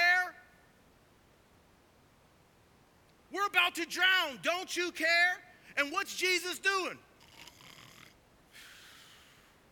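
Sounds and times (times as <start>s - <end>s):
speech: 3.4s - 7.1s
person imitating snoring: 7.2s - 8.2s.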